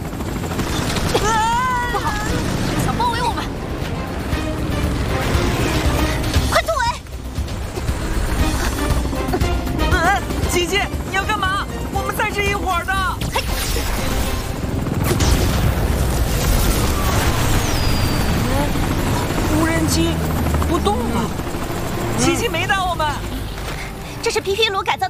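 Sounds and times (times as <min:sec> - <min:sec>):
swarm of radio-controlled drones buzzing: 0:00.0 - 0:24.9
excited voices shouting: 0:16.5 - 0:17.6.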